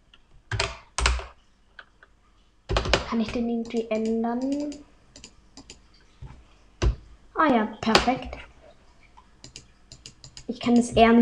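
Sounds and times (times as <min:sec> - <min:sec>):
computer keyboard typing a server name: 0:00.5 - 0:01.4, 0:02.7 - 0:05.8, 0:09.4 - 0:10.9
speech: 0:03.1 - 0:04.9, 0:07.4 - 0:08.4, 0:10.5 - 0:11.2.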